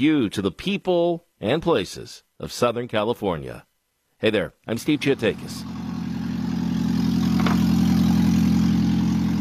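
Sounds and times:
speech: 0.0 - 5.7
Prius engine idling without catalytic converter: 5.0 - 9.3.

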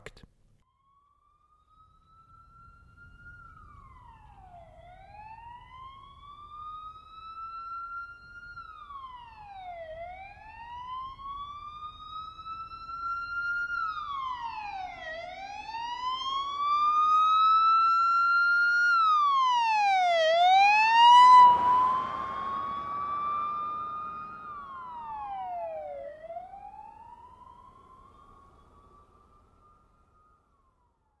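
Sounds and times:
ambulance siren wailing with Doppler shift: 2.4 - 30.7
road noise of passing ambulance: 20.1 - 28.8.

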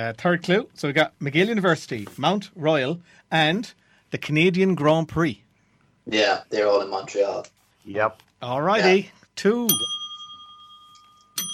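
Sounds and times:
speech: 0.0 - 5.4, 6.1 - 10.0
bicycle-style bell ringing: 9.7 - 11.5.

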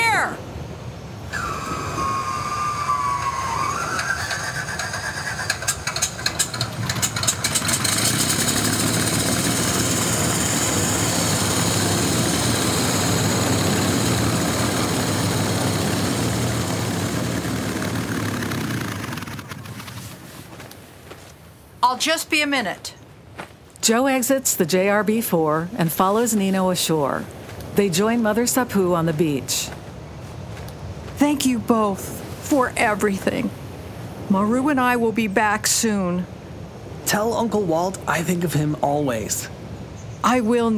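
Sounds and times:
floatplane radial engine starter whining at a dock: 1.3 - 20.7
speech: 22.0 - 23.0, 23.9 - 29.8, 31.2 - 33.6, 34.3 - 36.4, 37.1 - 39.6, 40.2 - 40.7.

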